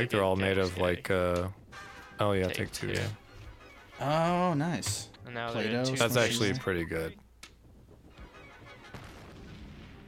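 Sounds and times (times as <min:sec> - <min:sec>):
speech: 0:00.0 - 0:01.6, 0:02.2 - 0:03.2, 0:04.0 - 0:07.2
cartoon explosion: 0:08.2 - 0:10.0.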